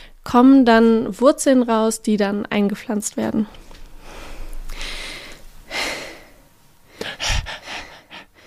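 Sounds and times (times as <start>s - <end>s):
speech: 0.2s - 3.6s
deep noisy breaths catching air after speaking: 4.0s - 8.4s.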